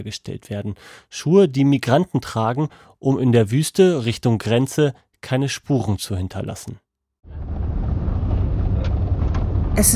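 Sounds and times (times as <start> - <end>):
speech: 0.0 - 6.8, 9.8 - 9.9
car engine rumble on a gravel road in the desert at night: 7.3 - 9.9.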